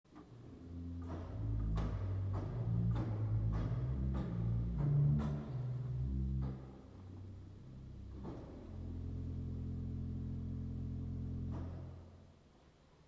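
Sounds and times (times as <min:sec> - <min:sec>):
Subbass 16: 0:00.3 - 0:12.4.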